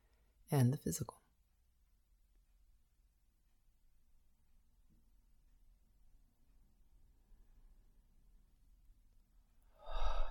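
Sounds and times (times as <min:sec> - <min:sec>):
speech: 0:00.5 - 0:01.2
deep breath in a guided breathing exercise: 0:09.7 - 0:10.2.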